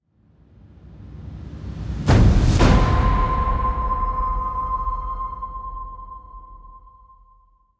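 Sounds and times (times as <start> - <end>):
swoosh hit sliding in: 0.7 - 6.8.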